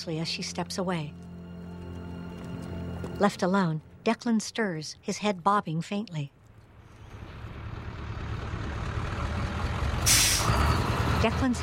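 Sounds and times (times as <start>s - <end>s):
speech: 0.0s - 1.3s, 3.2s - 6.4s, 11.2s - 11.6s
heavy vehicle engine rumbling: 6.5s - 11.6s
air brakes releasing: 10.0s - 10.8s.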